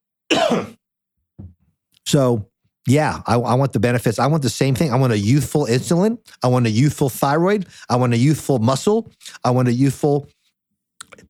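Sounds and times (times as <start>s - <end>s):
loud harsh cough: 0.3s - 0.8s
speech: 0.5s - 0.8s, 2.1s - 10.4s.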